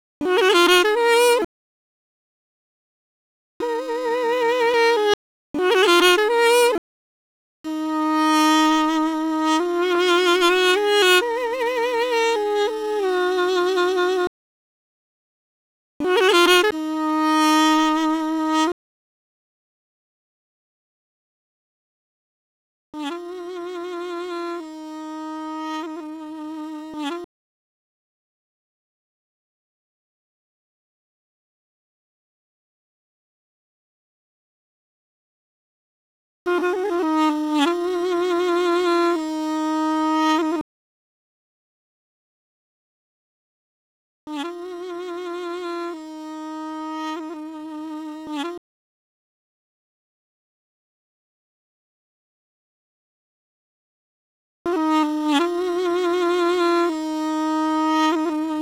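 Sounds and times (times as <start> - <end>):
duduk playing: 0.2 - 1.5, 3.6 - 6.8, 7.7 - 14.3, 16.0 - 18.8, 23.0 - 27.3, 36.5 - 40.6, 44.3 - 48.6, 54.7 - 58.6.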